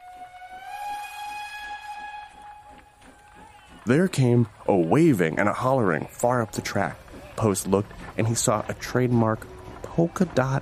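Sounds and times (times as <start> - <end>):
distant train horn: 0.0 - 3.9
speech: 3.9 - 10.6.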